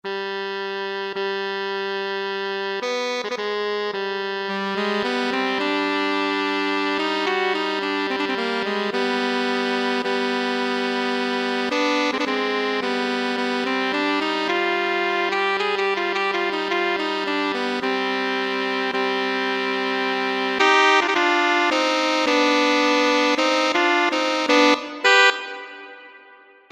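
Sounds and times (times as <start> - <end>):
saxophone duet: 0.0 - 26.7.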